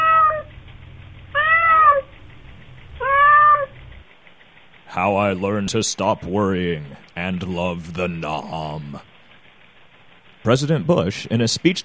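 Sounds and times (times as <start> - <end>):
high-pitched kitten meowing: 0.0 - 0.5, 1.4 - 2.1, 3.0 - 3.8
low steady hum: 0.0 - 11.8
speech: 5.0 - 9.1, 10.4 - 11.8.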